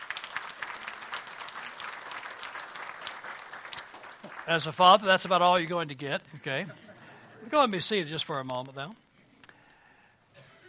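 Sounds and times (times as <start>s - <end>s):
audience applause in a room full of people: 0.0s - 5.5s
speech: 4.5s - 6.8s, 7.4s - 9.0s.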